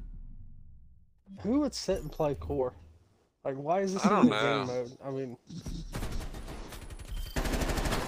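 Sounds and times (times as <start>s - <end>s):
speech: 1.4s - 2.9s, 3.5s - 6.0s
rapid automatic gunfire in a first-person shooter video game: 6.1s - 8.0s.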